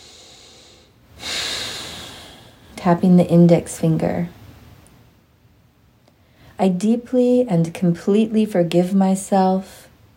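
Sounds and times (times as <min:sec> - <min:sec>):
deep breath drawn in during a guided tapping exercise: 0:00.0 - 0:02.8
speech: 0:02.8 - 0:04.4, 0:06.6 - 0:09.9.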